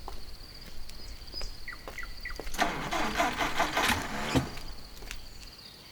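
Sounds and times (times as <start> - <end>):
large bus engine cranking and failing to start: 2.5 - 5.0
bus engine sputters: 2.5 - 5.3.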